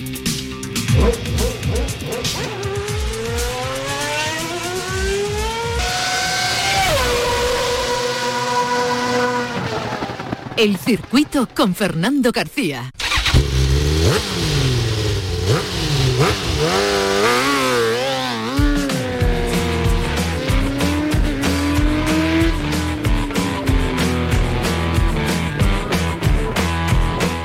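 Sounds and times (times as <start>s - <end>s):
high-pitched racing motorcycle engines revving and accelerating past: 0.0s - 11.1s, 13.0s - 27.4s
speech: 10.6s - 13.0s.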